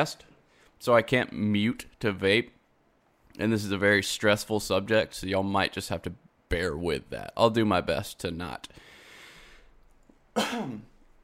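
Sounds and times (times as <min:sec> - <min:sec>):
speech: 0:00.0 - 0:02.6, 0:03.4 - 0:08.9, 0:10.4 - 0:10.9
soft breathy hiss: 0:08.7 - 0:09.8
person clearing throat: 0:10.4 - 0:11.0
person coughing: 0:10.4 - 0:11.0.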